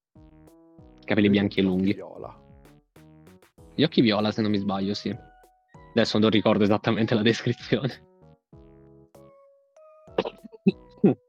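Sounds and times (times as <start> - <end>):
speech: 1.1 - 2.4, 3.8 - 5.3, 6.0 - 8.1, 10.6 - 11.2
person coughing hard: 10.2 - 11.2.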